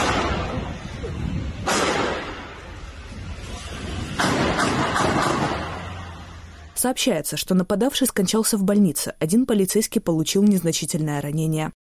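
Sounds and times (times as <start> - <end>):
loud gunshots: 0.0 - 0.9, 1.6 - 2.7, 3.6 - 6.2
noisy rumbling background: 0.0 - 11.7
speech: 6.8 - 11.8.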